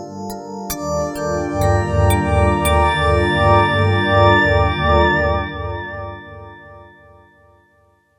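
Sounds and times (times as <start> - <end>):
Yamaha TX802 synthesizer Ting voice: 0.9 - 6.5.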